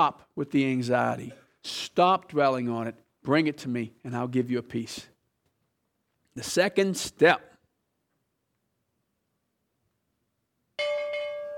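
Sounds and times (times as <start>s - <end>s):
speech: 0.0s - 5.1s, 6.4s - 7.5s
bell struck: 10.8s - 11.5s.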